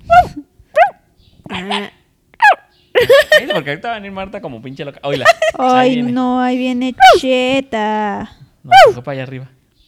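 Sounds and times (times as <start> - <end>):
dogs barking in short high yips: 0.0 - 2.7
speech: 3.0 - 9.6.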